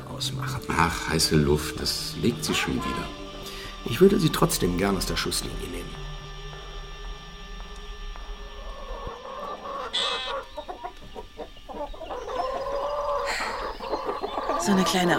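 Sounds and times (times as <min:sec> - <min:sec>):
speech: 0:00.2 - 0:03.2, 0:03.8 - 0:06.1, 0:14.6 - 0:15.1
flock of chickens clucking: 0:00.5 - 0:03.9, 0:08.6 - 0:15.1.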